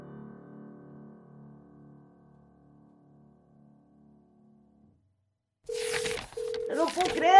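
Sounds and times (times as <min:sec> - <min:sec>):
person speaking: 0:05.7 - 0:07.3
telephone tones from a radio station phone: 0:05.7 - 0:07.3.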